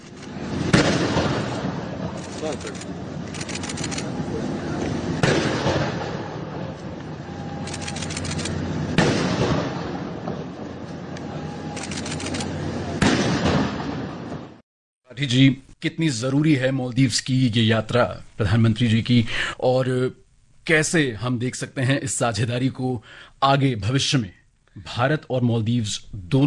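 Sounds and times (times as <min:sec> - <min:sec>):
noisy outdoor crowd: 0:00.0 - 0:14.6
heavy cannon blasts of a gun salute: 0:00.4 - 0:02.5, 0:05.0 - 0:06.7, 0:08.9 - 0:10.6, 0:13.0 - 0:14.6
speech: 0:02.4 - 0:03.0, 0:15.2 - 0:26.4.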